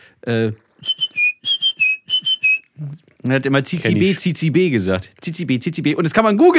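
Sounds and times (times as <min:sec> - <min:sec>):
speech: 0:00.1 - 0:01.0, 0:02.8 - 0:06.5
person whistling an imitation of a tit's call: 0:00.8 - 0:02.7.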